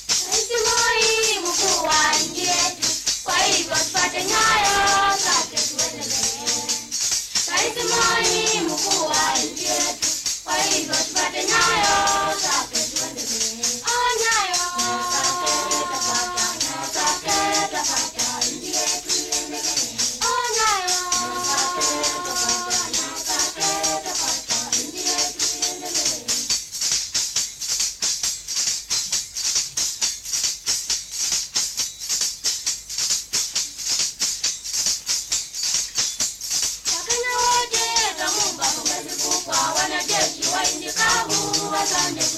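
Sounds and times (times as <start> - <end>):
praise song: 0.2 - 26.5, 36.9 - 42.3.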